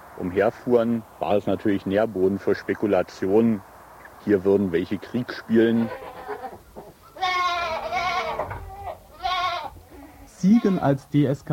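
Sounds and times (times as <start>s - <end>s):
faint noise: 0.0s - 11.5s
speech: 0.2s - 6.1s, 10.4s - 11.5s
goats bleating near a bunker: 5.3s - 6.6s, 7.2s - 11.1s.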